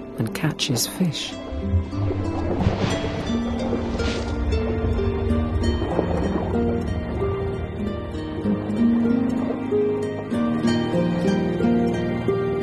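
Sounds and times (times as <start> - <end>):
speech: 0.2 - 3.0
surf-like noise: 1.3 - 12.6
whale song: 1.3 - 12.6.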